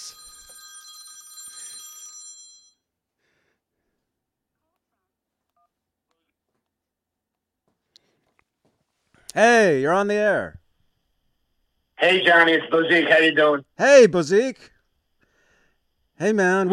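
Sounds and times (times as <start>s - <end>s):
telephone with bright rapidly trilling electronic ring: 0.0s - 2.8s, 12.0s - 13.6s
speech: 9.3s - 10.6s, 12.0s - 14.7s, 16.2s - 16.7s.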